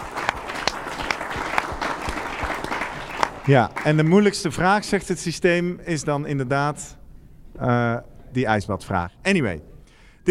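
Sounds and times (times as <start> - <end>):
audience applauding for quiz winners: 0.0 - 4.7
speech: 3.4 - 7.0, 7.6 - 10.2.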